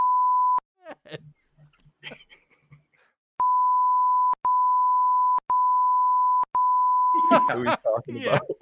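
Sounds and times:
censor bleep tone: 0.0 - 0.6, 3.4 - 7.6
laughter: 0.8 - 1.4, 2.0 - 3.1, 7.2 - 8.6
person talking: 7.2 - 8.6.

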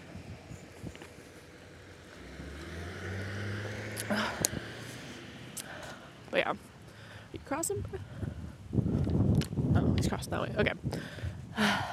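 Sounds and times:
wind buffeting the microphone: 0.0 - 1.2, 7.4 - 11.9
large truck driving past: 1.8 - 5.6
speech: 6.4 - 6.7, 7.5 - 8.3, 10.0 - 11.9.

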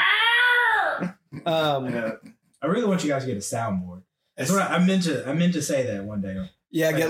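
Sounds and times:
person imitating a jungle cat cry: 0.0 - 1.1
speech: 1.0 - 7.0.

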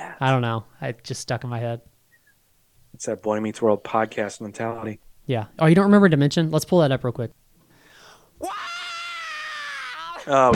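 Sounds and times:
speech: 0.2 - 1.9, 2.9 - 7.4, 10.3 - 10.5
loud raw screamed vocal from a rock song: 8.4 - 10.5.

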